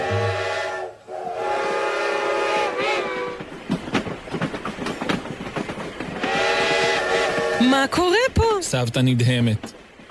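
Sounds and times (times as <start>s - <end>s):
train whistle blowing: 0.0s - 3.4s, 6.3s - 7.7s
train wheels clickety-clack as the train pulls away: 2.6s - 10.1s
speech: 7.8s - 9.8s.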